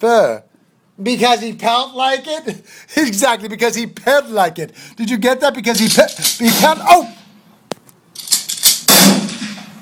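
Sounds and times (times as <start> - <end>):
speech: 0.0 - 7.2
faint clicks and pops: 7.7 - 8.0
loud sharp gunshots with tail: 8.9 - 9.6.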